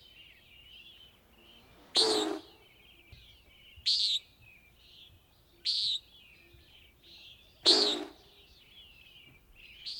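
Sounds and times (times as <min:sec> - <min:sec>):
common nighthawk calling: 0:01.3 - 0:02.8, 0:07.6 - 0:08.5.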